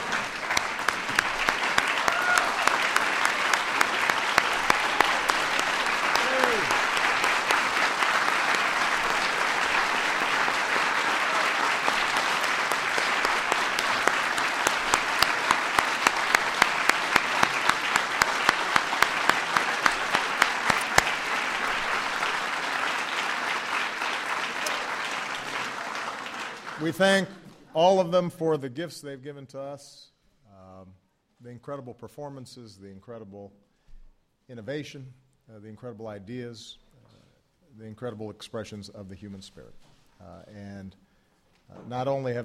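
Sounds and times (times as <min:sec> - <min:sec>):
applause from a large audience: 0:00.0 - 0:27.0
speech: 0:26.9 - 0:30.1, 0:31.4 - 0:33.6, 0:34.5 - 0:36.8, 0:37.8 - 0:41.0, 0:41.7 - 0:42.4.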